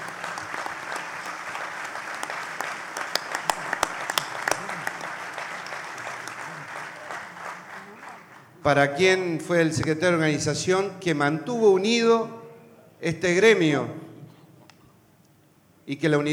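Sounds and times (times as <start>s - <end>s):
crowd applauding at a trade union gathering: 0.0s - 8.6s
speech: 8.6s - 12.4s, 13.0s - 14.0s, 15.9s - 16.3s.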